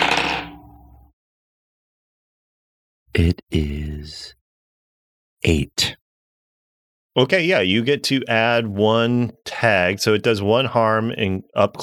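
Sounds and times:
dice tumbling across a hard table: 0.0s - 0.6s
speech: 3.2s - 4.4s, 5.4s - 6.0s, 7.2s - 11.8s.

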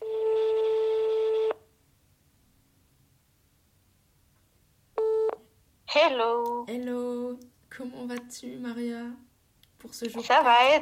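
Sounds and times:
telephone ringing tone as a steady electronic buzz: 0.0s - 1.6s
speech: 6.0s - 10.8s.

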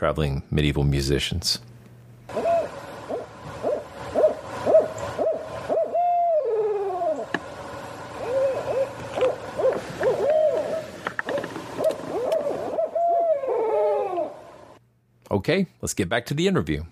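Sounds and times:
speech: 0.0s - 2.4s, 15.4s - 16.9s
barred owls hooting: 2.3s - 7.4s, 8.0s - 14.8s.

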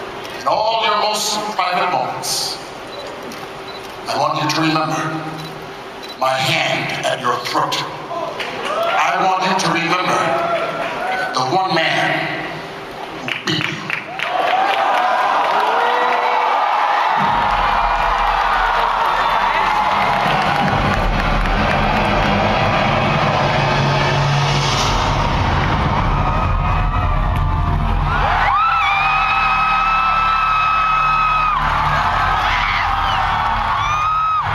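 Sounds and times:
speech: 0.5s - 2.6s, 4.1s - 5.5s, 6.2s - 8.0s, 9.1s - 10.5s, 11.5s - 12.4s
large convention audience screaming and cheering: 8.1s - 11.5s, 12.4s - 34.5s.

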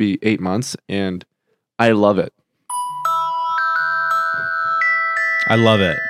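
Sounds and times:
speech: 0.0s - 2.4s, 5.5s - 6.0s
phone ringtone bright electronic melody: 2.7s - 6.0s.

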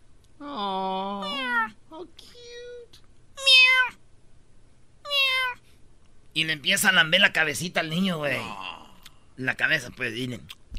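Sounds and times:
faint low hum: 0.0s - 10.7s
kitten meowing: 1.2s - 1.7s, 3.4s - 4.0s, 5.0s - 5.6s
speech: 6.4s - 8.8s, 9.4s - 10.6s.

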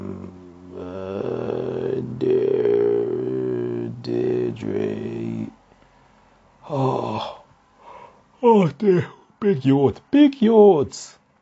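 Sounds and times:
person yawning: 0.0s - 5.5s, 6.6s - 8.0s
speech: 8.7s - 11.2s.

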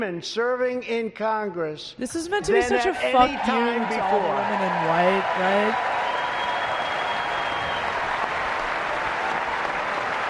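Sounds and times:
speech: 0.0s - 6.0s
large audience applauding in a big hall during a speech: 2.8s - 10.2s.

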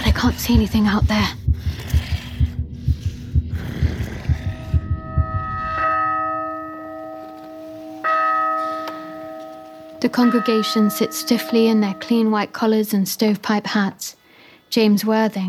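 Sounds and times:
loud rapid heartbeat sound effect: 0.0s - 6.6s
speech: 0.2s - 1.4s, 10.0s - 15.4s
church bell strikes: 4.4s - 12.7s.

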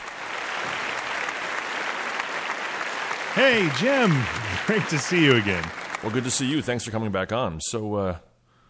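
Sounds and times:
audience applause: 0.0s - 6.9s
laughter: 3.4s - 6.3s
speech: 3.4s - 8.3s.

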